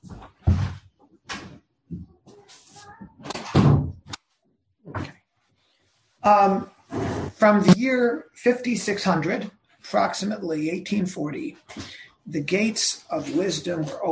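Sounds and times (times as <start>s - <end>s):
door being handled and closed with dull thuds and knocks: 3.5s - 4.1s
speech: 6.2s - 14.1s.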